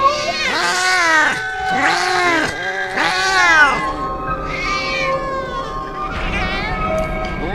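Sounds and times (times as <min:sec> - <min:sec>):
several cats meowing: 0:00.0 - 0:07.5.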